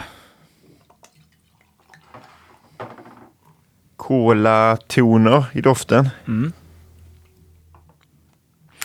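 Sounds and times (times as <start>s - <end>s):
beer pouring into glasses: 0.7s - 3.7s
speech: 4.1s - 6.6s.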